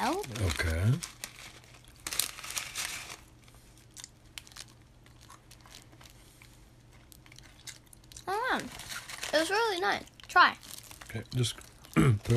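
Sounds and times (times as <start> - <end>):
snack packet crinkling: 0.0 - 12.3
speech: 0.1 - 1.2, 8.6 - 8.8, 9.4 - 12.3.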